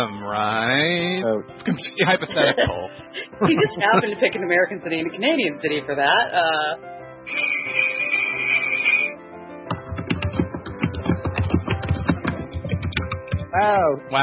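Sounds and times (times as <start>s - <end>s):
speech: 0.0s - 7.8s, 13.5s - 14.2s
laughter: 1.7s - 4.7s
brief high whistling tone: 7.3s - 9.2s
loud rapid computer keyboard typing: 9.7s - 13.5s.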